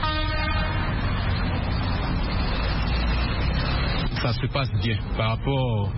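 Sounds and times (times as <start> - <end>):
brief vehicle horn toot: 0.0 - 0.8
motorcycles and other traffic roaring past on a busy road: 0.0 - 5.9
speech: 4.2 - 5.9.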